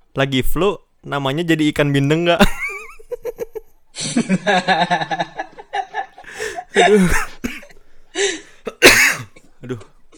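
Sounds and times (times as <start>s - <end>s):
speech: 0.2s - 2.6s, 4.0s - 5.3s, 6.8s - 7.3s
laughter: 2.4s - 7.6s
sharp loud coughs: 6.3s - 7.8s, 8.6s - 10.1s.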